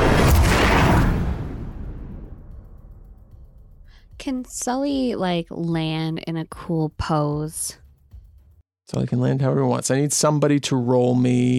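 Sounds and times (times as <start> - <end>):
loud broadband explosion with decaying roar: 0.0 - 3.9
speech: 4.2 - 7.8, 8.9 - 11.5.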